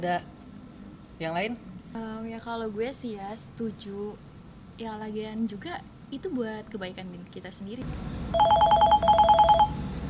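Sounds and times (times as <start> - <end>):
speech: 0.0 - 0.4, 1.2 - 8.6
telephone ringing for an incoming call: 8.3 - 9.8.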